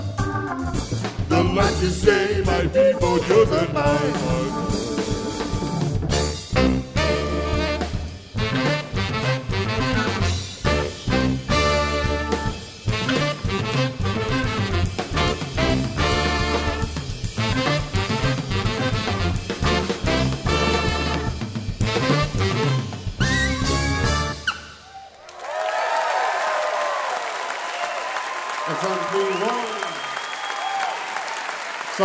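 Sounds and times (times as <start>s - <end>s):
bass in a full loud band: 0.0s - 25.0s
drums in a full loud band: 0.0s - 32.0s
speech: 1.4s - 4.9s
tenor saxophone playing a steady run of melody: 2.4s - 24.8s.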